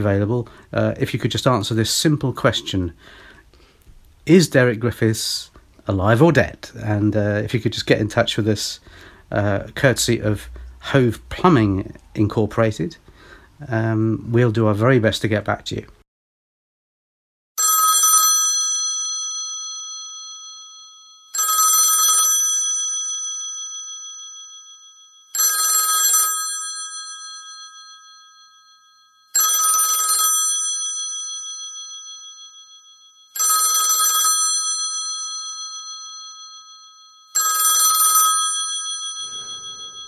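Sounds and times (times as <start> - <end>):
speech: 0.0 - 3.3, 4.2 - 13.0, 13.6 - 16.0
telephone bell ringing for an incoming call: 17.6 - 40.0.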